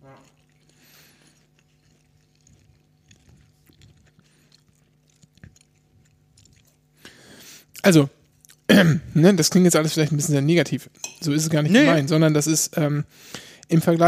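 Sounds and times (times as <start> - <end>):
lip smacking and chewing on a Beyond Meat burger: 0.0 - 8.7
low steady hum: 0.0 - 14.0
speech: 7.8 - 8.2, 8.8 - 14.0.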